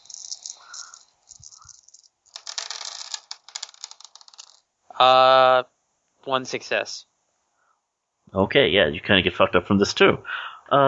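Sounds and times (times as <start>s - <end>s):
six dice rattling when shaken for a role-playing game check: 0.0s - 4.6s
speech: 5.0s - 5.7s, 6.3s - 7.1s, 8.3s - 10.8s.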